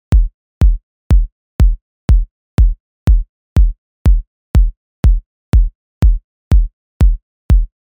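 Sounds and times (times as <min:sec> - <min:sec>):
122 BPM kick drum steps: 0:00.0 - 0:07.8.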